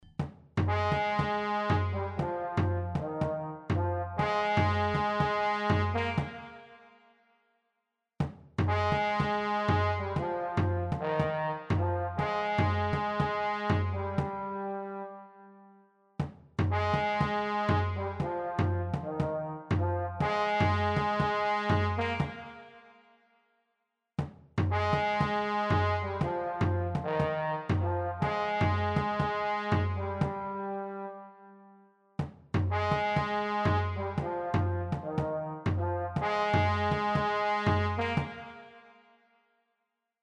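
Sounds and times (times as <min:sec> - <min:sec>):
trombone: 0:00.6 - 0:06.7, 0:08.6 - 0:15.2, 0:16.7 - 0:22.7, 0:24.7 - 0:31.3, 0:32.7 - 0:38.8.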